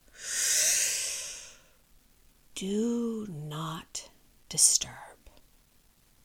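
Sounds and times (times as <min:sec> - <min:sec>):
long airy inhalation through the nose: 0:00.1 - 0:01.8
speech: 0:02.6 - 0:05.1.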